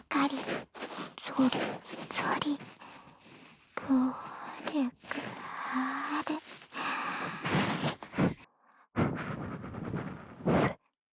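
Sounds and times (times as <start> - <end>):
speech: 1.4 - 2.6
breath blown softly into the ear: 2.6 - 8.4, 9.0 - 10.8.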